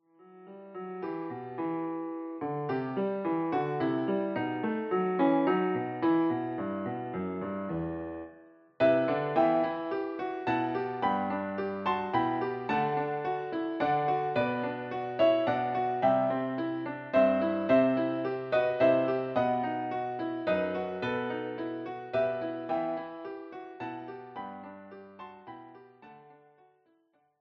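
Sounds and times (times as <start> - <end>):
piano duet for four hands: 0.0 - 26.9.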